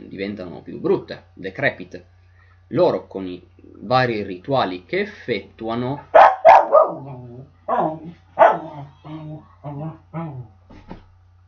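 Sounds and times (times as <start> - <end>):
faint steady hum: 0.0 - 11.4
speech: 0.1 - 6.2
dog barking: 6.1 - 8.9.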